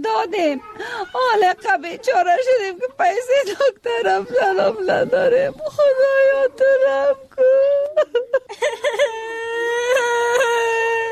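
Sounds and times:
speech: 0:00.0 - 0:09.3
child crying with whimpering sobs and a high-pitched wail: 0:03.9 - 0:06.1, 0:08.6 - 0:11.1.

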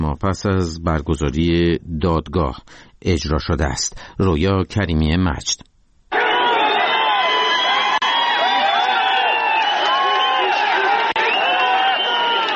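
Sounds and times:
speech: 0:00.1 - 0:05.7
large crowd cheering and shouting at a public hanging at dawn: 0:06.1 - 0:12.5.

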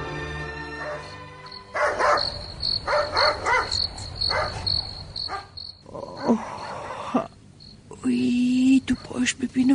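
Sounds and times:
crickets chirping: 0:00.6 - 0:09.7
dog barking at night: 0:00.8 - 0:05.6.

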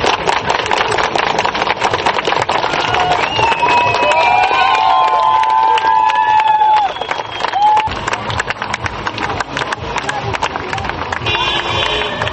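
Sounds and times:
large protest crowd clapping outdoors: 0:00.0 - 0:12.3
car horns honking in sustained blasts: 0:11.2 - 0:12.3.

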